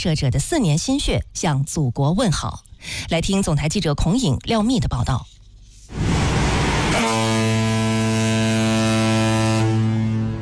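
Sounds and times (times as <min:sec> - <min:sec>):
speech: 0:00.0 - 0:06.1
horn of a 5000-ton cargo ship setting off on a canal: 0:06.0 - 0:10.4.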